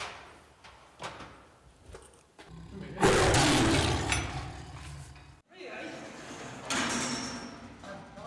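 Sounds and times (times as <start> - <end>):
heavy metal door sliding open with grinding rumble: 2.7 - 8.2.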